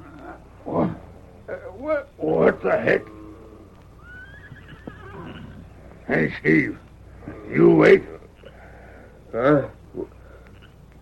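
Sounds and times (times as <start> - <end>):
speech: 1.8 - 3.2, 6.1 - 6.8, 7.5 - 8.2, 9.3 - 10.2
distant horse whinny at a camp at night: 2.8 - 5.9.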